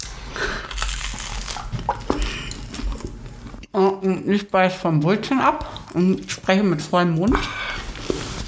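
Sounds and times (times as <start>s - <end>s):
plastic crinkling: 0.0s - 3.2s
low hum: 0.0s - 8.4s
person drinking water with soft gulps: 1.6s - 3.7s
speech: 3.8s - 7.7s.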